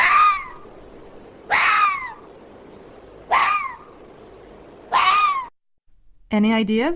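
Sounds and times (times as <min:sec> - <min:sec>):
fox barking hoarse rising-then-falling yelps: 0:00.0 - 0:00.7, 0:01.5 - 0:02.3, 0:03.2 - 0:04.0, 0:04.9 - 0:05.5
speech: 0:06.3 - 0:06.9.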